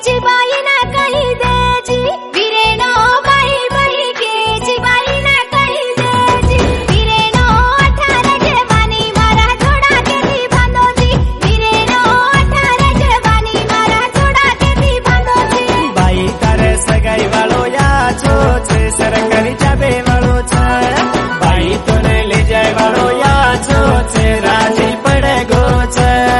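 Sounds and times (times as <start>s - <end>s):
Banjara Gujarati song: 0.1s - 26.3s.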